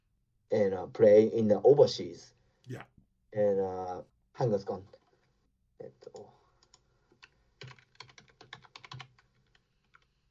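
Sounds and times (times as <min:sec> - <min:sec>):
speech: 0:00.5 - 0:05.0, 0:05.8 - 0:06.4
typing on a computer keyboard: 0:06.6 - 0:10.3.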